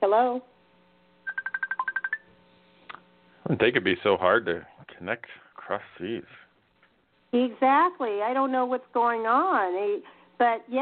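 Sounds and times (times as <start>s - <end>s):
speech: 0.0s - 0.6s, 3.5s - 6.4s, 7.3s - 10.8s
telephone keypad dialing tones as a number is entered: 1.3s - 2.2s.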